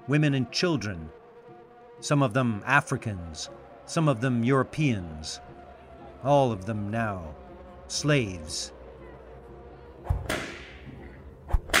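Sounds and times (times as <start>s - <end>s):
speech: 0.1s - 1.2s, 2.0s - 5.5s, 6.2s - 8.8s
whip cracking: 10.1s - 10.9s, 11.5s - 11.7s.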